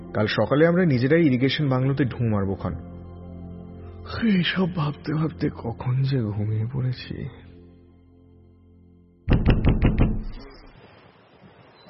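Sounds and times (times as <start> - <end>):
speech: 0.1 - 2.9, 4.1 - 7.4
heavy banging on a door: 9.3 - 10.4.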